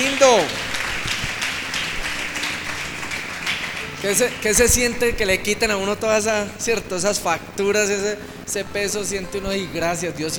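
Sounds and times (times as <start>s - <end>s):
speech: 0.0s - 0.6s, 4.0s - 10.3s
congregation applauding at a religious restoration seminar: 0.0s - 5.7s.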